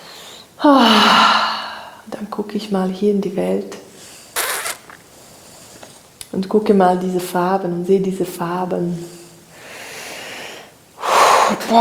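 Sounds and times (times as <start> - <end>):
loud partly voiced breath drawn in sharply: 0.0 - 2.0, 9.1 - 11.6
speech: 2.4 - 3.8, 6.4 - 9.2.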